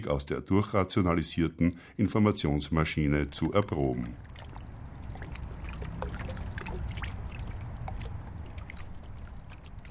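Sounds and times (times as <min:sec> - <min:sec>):
speech: 0:00.0 - 0:04.4
Danube river water lapping against the hull of a moored former survey ship: 0:03.3 - 0:09.9.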